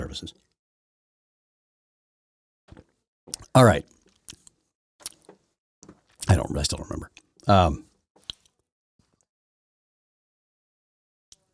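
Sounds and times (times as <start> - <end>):
speech: 0.1 - 0.5, 3.5 - 4.0, 6.3 - 7.9
person sipping a cup of chai: 2.7 - 6.3.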